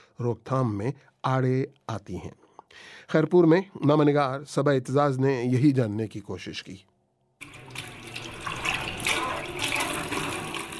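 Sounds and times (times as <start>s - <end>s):
speech: 0.2s - 6.9s
running tap water while dishes are washed in a home kitchen: 7.4s - 10.7s.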